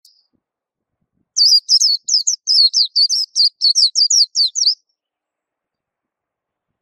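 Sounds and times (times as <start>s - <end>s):
white-eye song of high sweet twittering notes: 1.4s - 4.9s.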